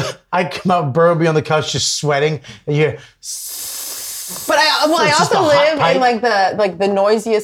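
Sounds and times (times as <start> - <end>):
speech: 0.3 - 7.4
voice imitating a hissing apartment radiator: 3.2 - 5.8
laughter: 4.6 - 6.2.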